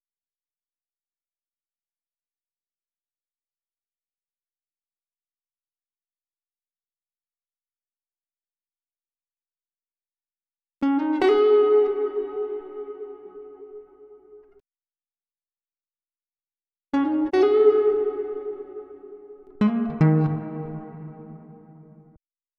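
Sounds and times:
D# minor guitar lead melody at 157 BPM: 10.8 - 14.6, 17.0 - 22.2.

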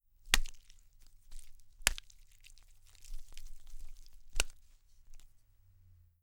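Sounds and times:
squishy cold cut slaps: 0.3 - 5.3.

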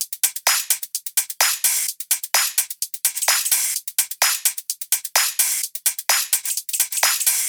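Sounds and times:
shuffle top drum loop in house music: 0.0 - 7.4.

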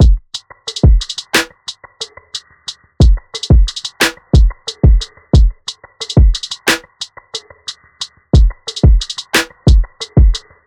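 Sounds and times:
drum loop at 90 BPM: 0.0 - 1.8, 3.0 - 7.1, 8.4 - 10.5.

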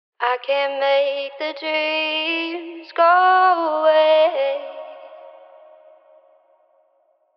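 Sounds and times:
wet vocal phrase in C sharp minor: 0.3 - 6.2.

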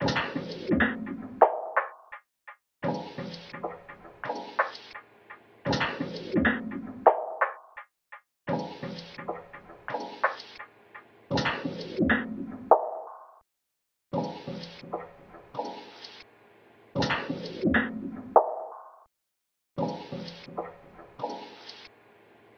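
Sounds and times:
percussion loop at 170 BPM: 0.0 - 5.0, 5.7 - 10.7, 11.3 - 12.8, 14.1 - 16.2, 17.0 - 18.0, 19.8 - 21.9.

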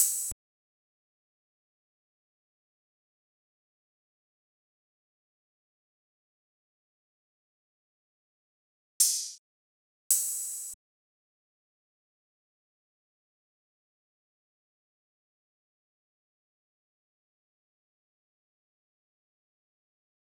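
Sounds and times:
space drum loop at 95 BPM: 0.0 - 0.3
open hi-hat: 0.0 - 0.4, 9.0 - 9.4, 10.1 - 10.8.

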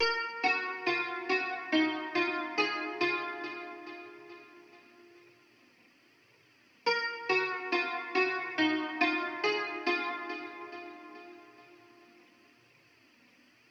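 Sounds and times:
dark guitar melody in D sharp minor: 0.0 - 5.4, 6.9 - 12.3.

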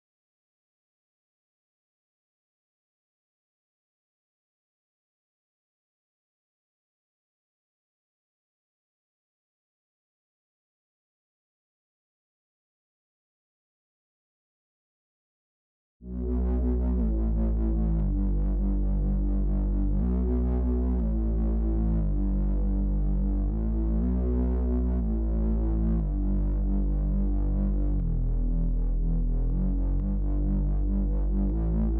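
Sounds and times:
bass loop in B minor: 16.1 - 31.9.

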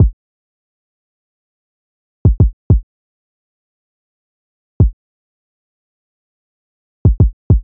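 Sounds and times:
kick drum at 100 BPM: 2.2 - 2.8, 7.1 - 7.6.

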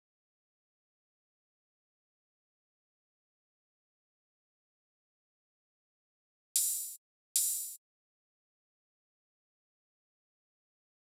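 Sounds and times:
drum loop with open hi-hat: 6.6 - 7.8.

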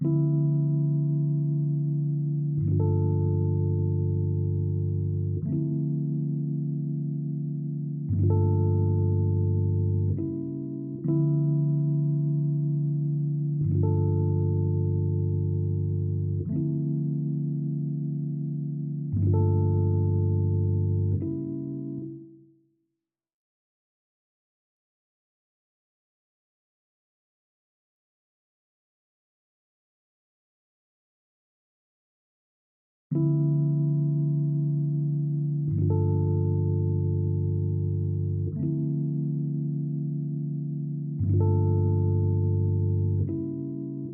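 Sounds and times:
Rhodes electric piano Afrobeats melody loop in D minor: 0.0 - 22.4, 33.1 - 44.1.

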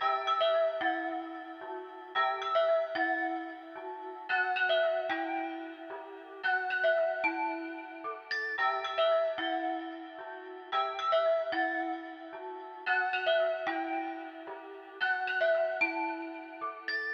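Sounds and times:
dark bells melody loop in E minor: 0.0 - 17.1.

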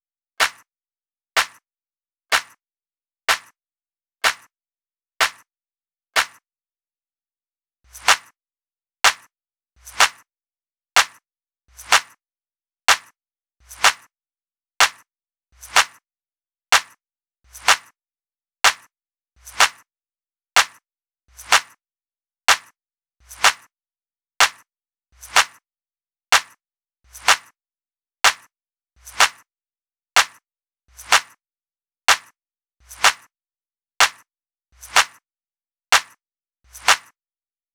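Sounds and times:
clap drum loop: 0.4 - 0.6, 1.4 - 1.6, 2.3 - 2.6, 3.3 - 3.5, 4.2 - 4.5, 5.2 - 5.4, 6.2 - 6.4, 7.9 - 8.3, 9.0 - 10.2, 11.0 - 12.2, 12.9 - 14.1, 14.8 - 15.0, 15.6 - 16.0, 16.7 - 17.9, 18.6 - 19.8, 20.6 - 21.8, 22.5 - 23.7, 24.4 - 24.6, 25.2 - 25.6, 26.3 - 27.5, 28.2 - 29.4, 30.2 - 31.4, 32.1 - 33.3, 34.0 - 34.2, 34.8 - 35.2, 35.9 - 37.1.

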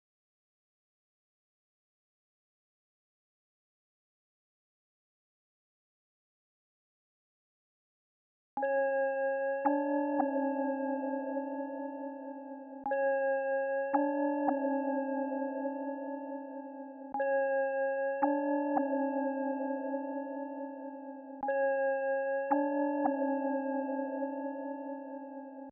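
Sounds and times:
trap bells melody loop in C sharp minor: 8.6 - 25.6.

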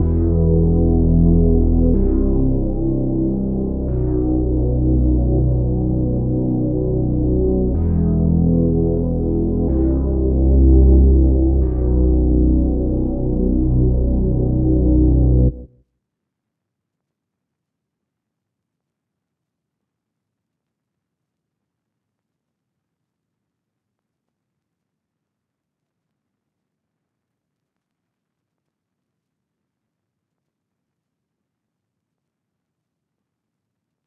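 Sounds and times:
124 BPM E minor bass line: 0.0 - 15.7.

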